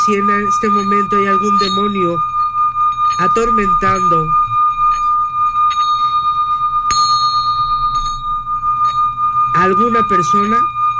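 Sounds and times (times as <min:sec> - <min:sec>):
speech: 0:00.0 - 0:02.3, 0:03.2 - 0:04.4, 0:09.6 - 0:10.7
bell ringing: 0:00.0 - 0:10.9.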